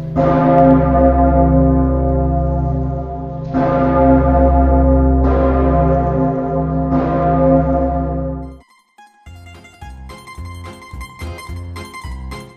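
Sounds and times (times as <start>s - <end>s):
massive church bell recast from original bell and cannons tolling: 0.0s - 8.6s.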